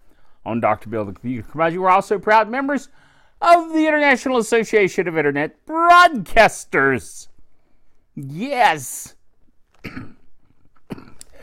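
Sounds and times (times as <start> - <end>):
speech: 0.4 - 7.3, 8.2 - 9.2, 9.8 - 10.2
person coughing harshly: 9.8 - 10.3, 10.9 - 11.4.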